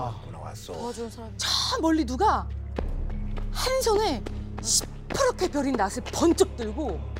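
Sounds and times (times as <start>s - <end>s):
speech: 0.0s - 2.6s, 3.6s - 7.1s
running footsteps: 2.7s - 7.1s.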